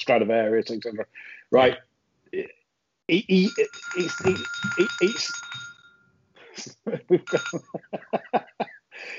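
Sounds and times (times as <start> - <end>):
speech: 0.0 - 5.6, 6.6 - 9.1
telephone ringing with electronic tone: 3.4 - 6.2, 7.2 - 7.7
laughter: 6.6 - 9.1.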